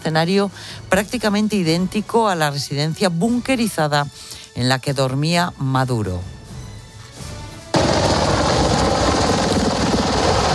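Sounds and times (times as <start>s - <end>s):
speech: 0.0s - 6.3s
group of helicopters flying at high speed and low altitude over Caracas: 7.8s - 10.5s.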